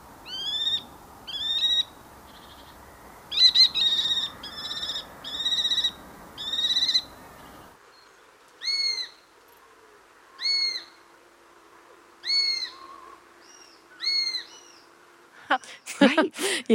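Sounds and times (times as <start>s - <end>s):
kestrel high-pitched screeching calls: 0.3s - 2.7s, 3.3s - 7.2s, 10.4s - 10.9s, 12.2s - 14.8s
speech: 16.2s - 16.7s.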